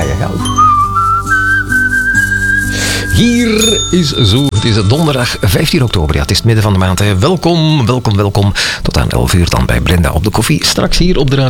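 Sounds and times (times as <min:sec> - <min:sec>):
low held tones: 0:00.0 - 0:08.1
person whistling in a bathroom: 0:00.4 - 0:04.4
speech: 0:03.2 - 0:11.4.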